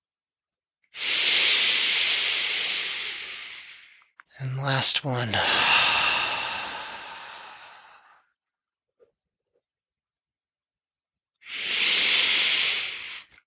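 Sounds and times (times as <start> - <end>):
forceful exhale pushing air out of lungs: 1.0 - 3.9, 4.6 - 8.2, 11.5 - 13.3
speech: 4.4 - 5.9.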